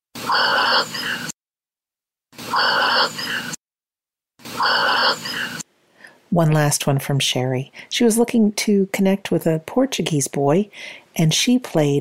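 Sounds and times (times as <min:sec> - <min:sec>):
dog's heavy breathy exhalations: 0:00.2 - 0:01.3, 0:02.4 - 0:03.6, 0:04.5 - 0:05.6
speech: 0:06.3 - 0:11.9.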